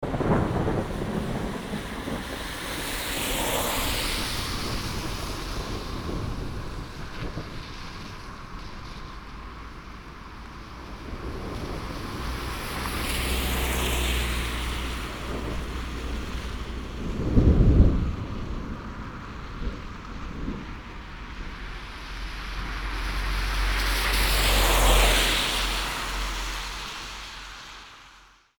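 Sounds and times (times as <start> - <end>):
thunder in a field: 0.0 - 26.9
car in a field: 0.0 - 28.5.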